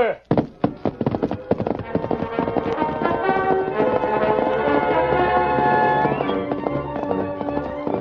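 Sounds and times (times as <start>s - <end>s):
speech: 0.0s - 0.3s
horse hooves clip-clopping: 0.2s - 7.9s
dramatic music: 1.8s - 7.9s.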